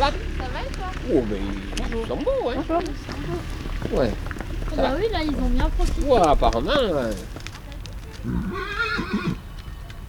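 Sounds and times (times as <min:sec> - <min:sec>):
speech: 0:00.0 - 0:07.4, 0:08.2 - 0:09.4
horse whinnying: 0:08.2 - 0:09.4.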